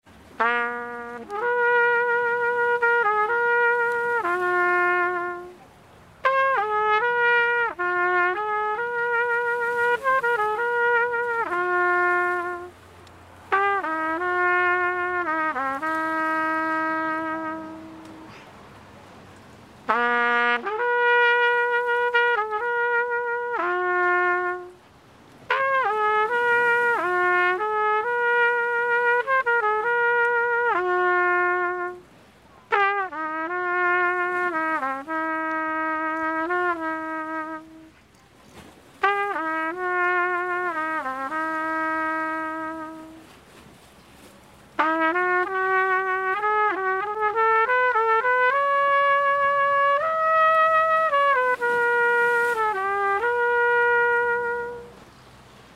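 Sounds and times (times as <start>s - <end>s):
man playing trumpet on a seafront promenade: 0.1s - 55.7s.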